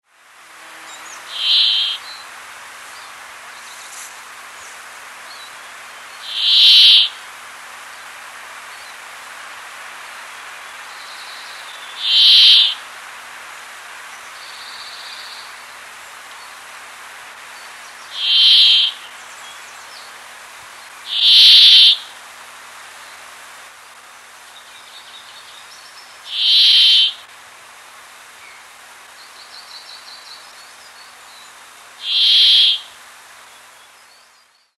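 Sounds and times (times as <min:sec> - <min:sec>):
Fringilla montifringilla calling: 0:01.3 - 0:02.1, 0:06.2 - 0:07.2, 0:11.9 - 0:12.8, 0:18.2 - 0:19.1, 0:21.1 - 0:22.0, 0:26.3 - 0:27.2, 0:32.0 - 0:32.9.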